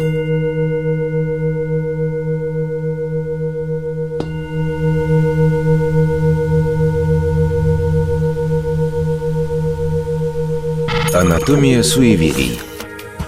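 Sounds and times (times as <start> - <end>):
singing bowl ringing: 0.0 - 12.6
soft singing bowl strike: 4.1 - 8.6
speech: 11.4 - 12.7.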